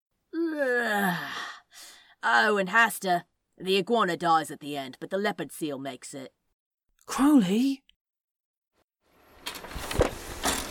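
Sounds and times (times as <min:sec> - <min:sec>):
exaggerated put-on yawn: 0:00.3 - 0:02.0
speech: 0:02.2 - 0:06.4, 0:07.1 - 0:07.8.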